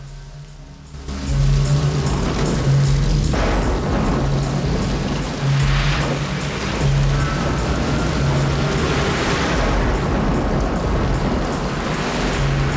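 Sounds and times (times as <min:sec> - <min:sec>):
several car engines rumbling and roaring as vehicles pull away: 0:00.0 - 0:12.7.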